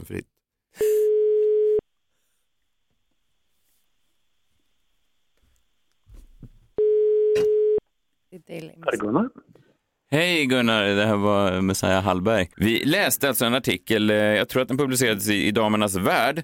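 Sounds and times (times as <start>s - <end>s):
speech: 0.1s - 1.0s, 8.4s - 16.4s
telephone call ringing tone: 0.8s - 1.8s, 6.8s - 7.8s.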